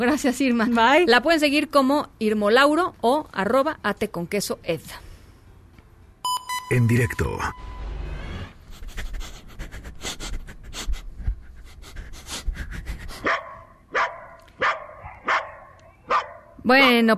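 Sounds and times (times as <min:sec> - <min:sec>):
speech: 0:00.0 - 0:05.1, 0:06.7 - 0:07.7, 0:16.7 - 0:17.1
Labrador dog panting and huffing: 0:08.7 - 0:13.4
Labrador dog barking sharply: 0:13.2 - 0:16.6.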